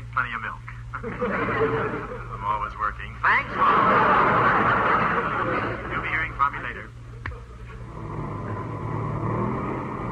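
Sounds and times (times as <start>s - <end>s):
speech: 0.2s - 7.0s
laughter: 1.0s - 2.5s, 3.5s - 6.2s
airplane motor droning: 7.2s - 10.1s.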